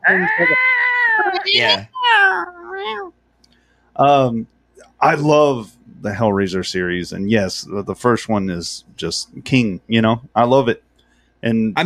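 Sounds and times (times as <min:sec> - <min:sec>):
human voice imitating a cat meow: 0:00.0 - 0:03.1
speech: 0:00.1 - 0:03.1, 0:04.0 - 0:10.8, 0:11.4 - 0:11.8.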